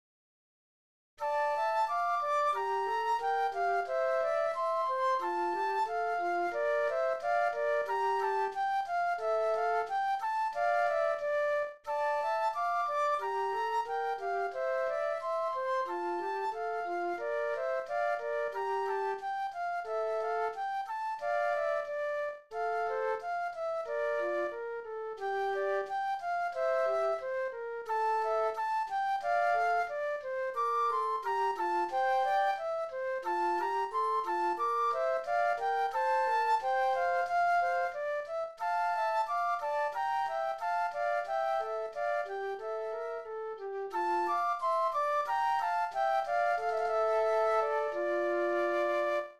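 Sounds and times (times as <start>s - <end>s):
classical flute duet: 1.2s - 49.3s.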